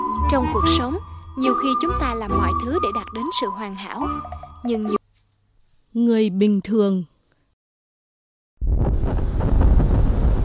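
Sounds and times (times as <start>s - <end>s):
speech: 0.3s - 5.0s, 6.0s - 7.1s
bitterly cold wind blowing hard: 8.8s - 10.4s.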